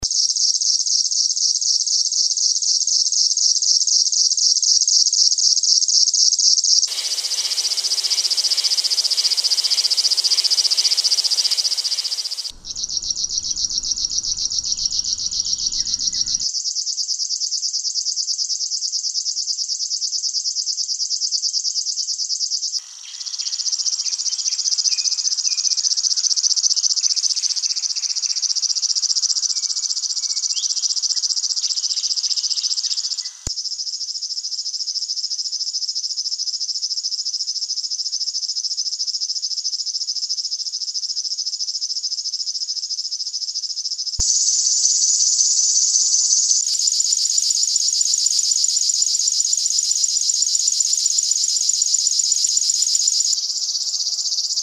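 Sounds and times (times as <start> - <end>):
river warbler: 6.9 - 16.4, 22.8 - 33.5, 44.2 - 54.6.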